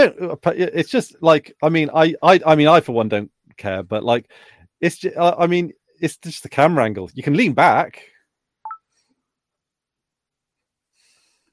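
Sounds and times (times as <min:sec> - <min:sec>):
speech: 0:00.0 - 0:08.1
two-tone electronic device notification chirp: 0:08.6 - 0:08.9.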